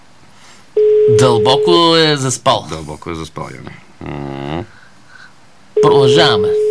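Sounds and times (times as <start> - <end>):
phone call ringback tone: 0.8 - 1.8, 5.8 - 6.6
speech: 1.1 - 4.7, 5.8 - 6.6.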